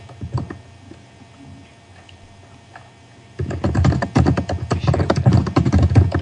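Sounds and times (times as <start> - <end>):
fast typing on a computer keyboard: 0.2 - 0.6, 3.4 - 6.2.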